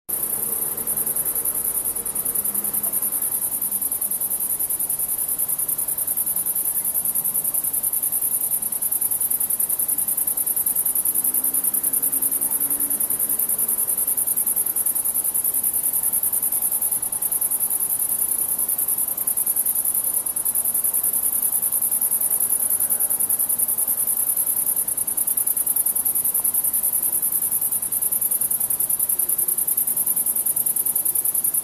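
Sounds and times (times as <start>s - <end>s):
insects chirping at night: 0.1s - 31.6s.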